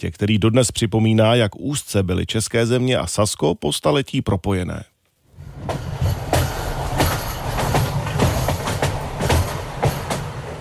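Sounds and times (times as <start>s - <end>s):
speech: 0.0s - 4.9s
train rumbling across a viaduct: 5.3s - 10.5s
train wheels clacking over rail joints: 5.5s - 10.5s.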